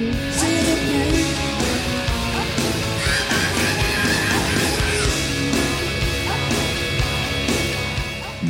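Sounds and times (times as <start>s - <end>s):
distorted guitars: 0.0s - 8.4s
loud dense rock track: 0.0s - 8.4s
laughter: 1.6s - 8.4s
singer screaming in a rock song: 2.4s - 6.8s.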